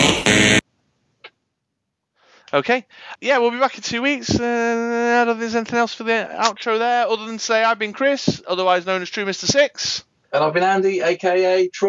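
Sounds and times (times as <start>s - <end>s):
harsh wrong-answer game show buzzer: 0.0s - 0.6s
speech: 2.5s - 11.8s.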